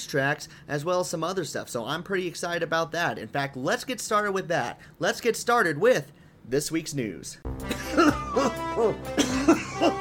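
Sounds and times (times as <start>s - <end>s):
speech: 0.0s - 7.8s, 8.4s - 9.3s
harsh raspy hacking coughs: 7.6s - 9.9s.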